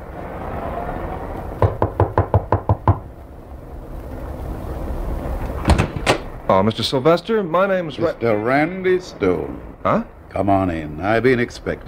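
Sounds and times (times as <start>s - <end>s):
low constant rumble: 0.0s - 11.8s
firm knocks on a wooden door: 1.6s - 3.1s
speech: 6.5s - 11.8s.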